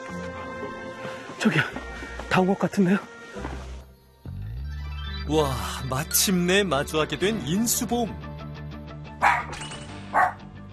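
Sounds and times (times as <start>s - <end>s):
speech: 1.4s - 3.1s, 5.3s - 8.3s
dog barking: 9.2s - 10.5s.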